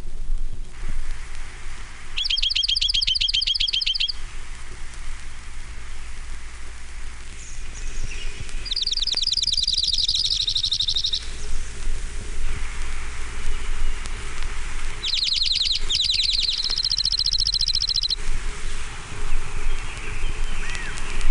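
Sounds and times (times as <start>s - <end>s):
low outdoor hiss: 0.0s - 21.2s
junco trilling: 2.2s - 4.2s, 7.6s - 11.6s, 15.0s - 18.2s.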